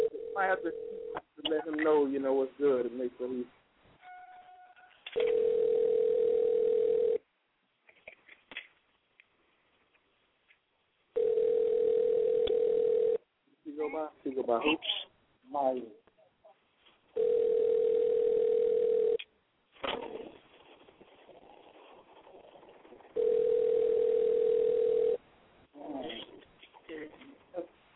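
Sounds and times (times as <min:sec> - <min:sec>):
ringback tone of an outgoing phone call: 0:00.0 - 0:01.2, 0:04.1 - 0:07.2, 0:11.2 - 0:13.2, 0:17.2 - 0:19.2, 0:23.2 - 0:25.2
speech: 0:00.4 - 0:03.6, 0:14.4 - 0:16.0.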